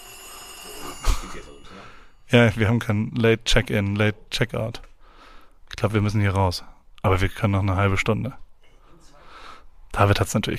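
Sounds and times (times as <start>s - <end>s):
telephone ringing with high electronic tone: 0.0s - 2.4s
speech: 1.3s - 4.9s, 5.8s - 8.4s, 9.9s - 10.5s.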